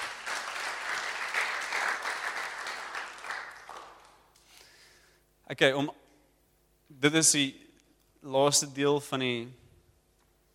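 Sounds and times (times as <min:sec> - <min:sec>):
audience applauding: 0:00.0 - 0:04.3
speech: 0:05.5 - 0:06.0, 0:06.9 - 0:07.6, 0:08.2 - 0:09.6.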